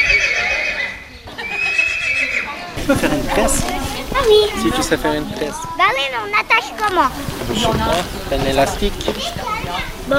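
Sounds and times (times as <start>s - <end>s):
Franches-Montagnes horse neighing at a horse event: 0.0s - 2.8s
noise at a horse event: 0.0s - 10.1s
laughter: 1.2s - 4.4s
speech: 2.9s - 10.1s.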